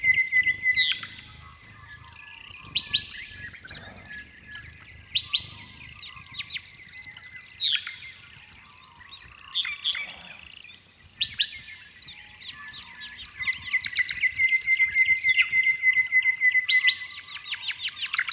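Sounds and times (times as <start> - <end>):
honeyeaters singing sharp rising and falling chirps: 0.0 - 14.0
soft background twitter: 0.0 - 18.3.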